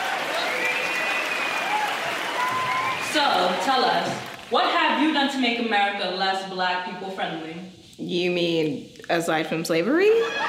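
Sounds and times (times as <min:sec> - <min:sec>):
room full of people applauding: 0:00.0 - 0:04.5
speech: 0:03.2 - 0:10.4.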